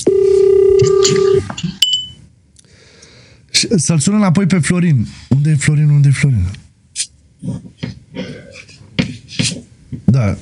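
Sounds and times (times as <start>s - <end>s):
phone ringing with an incoming call: 0.0s - 2.2s
speech: 3.6s - 6.7s, 10.2s - 10.4s.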